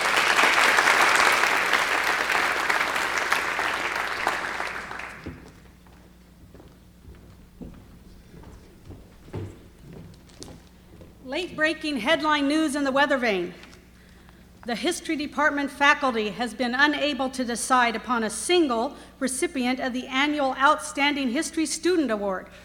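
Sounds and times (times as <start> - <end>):
audience applause for a student prize winner: 0.0 - 5.6
scattered thumps and knocks: 6.4 - 11.7
speech: 11.4 - 13.6, 14.6 - 22.6.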